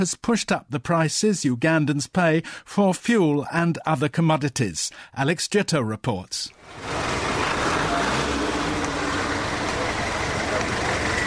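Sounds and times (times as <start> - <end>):
speech: 0.0 - 7.3
road traffic with engines rumbling and idling: 6.5 - 11.2.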